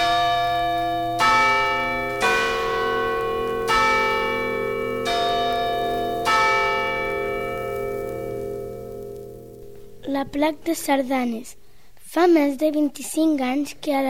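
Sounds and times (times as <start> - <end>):
church bells ringing from a bell tower: 0.0 - 10.9
speech: 10.2 - 14.0.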